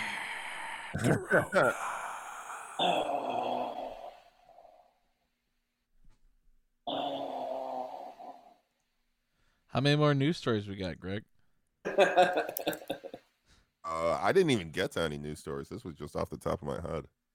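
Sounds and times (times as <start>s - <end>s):
person imitating a dying gasp: 0.0s - 4.4s, 6.9s - 8.5s
speech: 0.9s - 2.0s, 2.8s - 3.2s, 9.8s - 11.3s, 11.9s - 13.0s, 13.8s - 17.2s.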